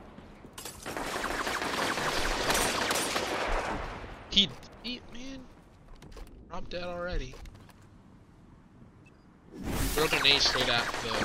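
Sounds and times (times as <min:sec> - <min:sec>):
video game gunfire in a Crucible match: 0:00.8 - 0:04.0, 0:09.9 - 0:11.2
speech: 0:04.4 - 0:05.0, 0:06.6 - 0:07.5, 0:10.0 - 0:11.2.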